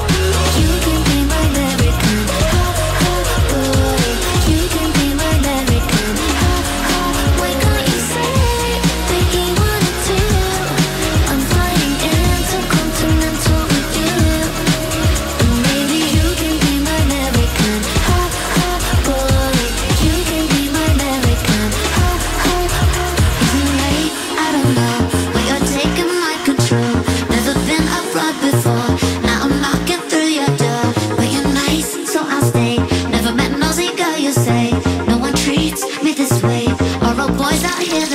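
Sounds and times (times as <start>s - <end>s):
remix pop song playing: 0.0s - 38.1s.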